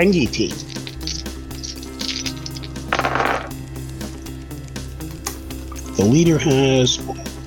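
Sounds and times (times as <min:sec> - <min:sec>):
speech: 0:00.0 - 0:00.7, 0:06.0 - 0:07.3
several dice clattering across a hard surface: 0:00.5 - 0:03.5.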